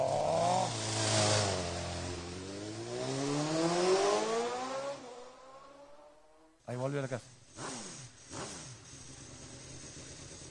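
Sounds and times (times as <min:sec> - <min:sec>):
motorcycle starting off and riding away, engine revving: 0:00.0 - 0:06.5, 0:07.2 - 0:10.5.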